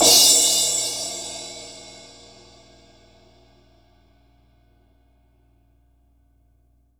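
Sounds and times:
crash cymbal of a dry drum kit: 0.0s - 3.8s.

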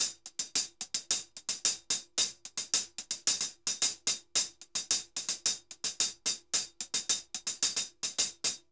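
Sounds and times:
murga hi-hat rhythm: 0.0s - 8.7s.

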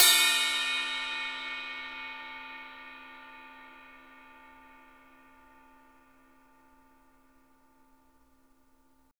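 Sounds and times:
ride cymbal crash on a drum machine: 0.0s - 4.6s.

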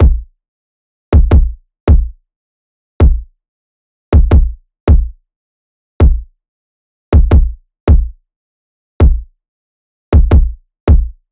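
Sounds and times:
kick drum loop: 0.0s - 0.3s, 1.2s - 2.2s, 3.0s - 3.3s, 4.2s - 5.2s, 6.0s - 6.3s, 7.2s - 8.2s, 9.0s - 9.3s, 10.2s - 11.2s.

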